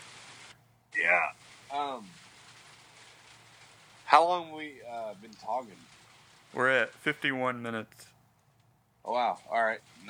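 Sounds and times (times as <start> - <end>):
rain falling: 0.0 - 7.7
speech: 4.1 - 8.2, 9.0 - 10.0.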